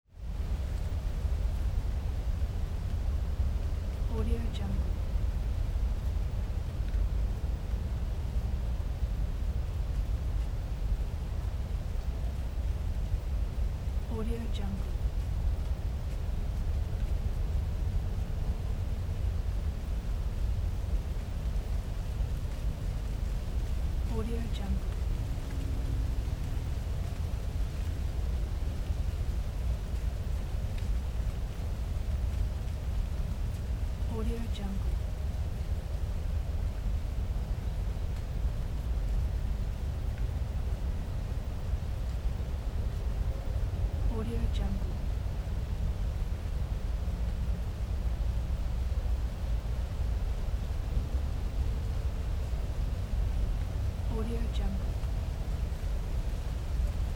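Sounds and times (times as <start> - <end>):
wind in a suburban hillside forest at autumn midday: 0.0 - 57.1.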